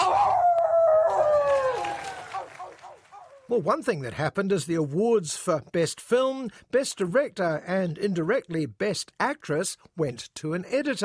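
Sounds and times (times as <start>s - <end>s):
person imitating a wolf howl: 0.0s - 2.7s
speech: 3.5s - 11.0s.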